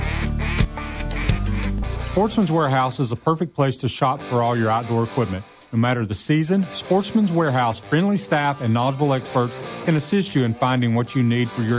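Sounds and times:
high-ball duck call blowing a hail call: 0:00.0 - 0:02.6
speech: 0:02.2 - 0:11.7.

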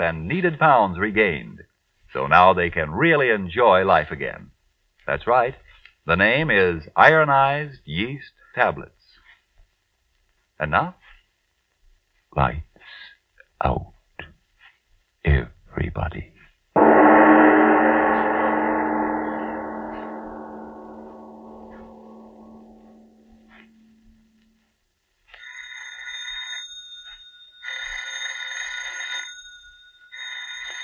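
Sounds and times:
speech: 0:00.0 - 0:04.5, 0:05.1 - 0:09.0, 0:10.6 - 0:11.0, 0:12.3 - 0:12.7, 0:13.6 - 0:13.9, 0:15.3 - 0:16.9
deep resonant tone: 0:16.8 - 0:24.6
telephone bell ringing in repeated bursts: 0:25.4 - 0:30.8.

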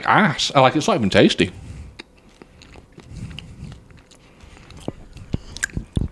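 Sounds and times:
speech: 0:00.0 - 0:01.7
soft mouth noises: 0:01.8 - 0:06.0
wet chewing of a crunchy spicy chip: 0:01.9 - 0:06.0.

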